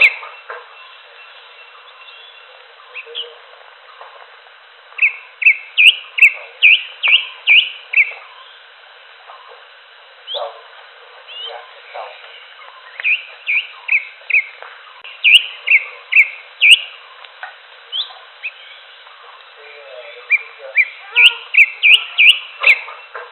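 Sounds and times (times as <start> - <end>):
Greater green leafbird song of upslurred whistled notes: 0.0 - 3.4, 5.0 - 8.6, 11.3 - 17.2, 17.9 - 19.1, 20.2 - 23.2.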